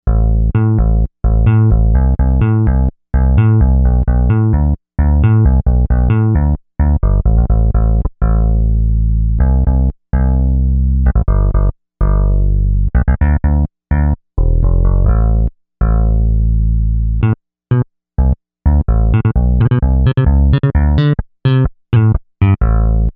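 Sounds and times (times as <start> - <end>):
punchy digital synth bass on Novation UltraNova: 0.1 - 23.1.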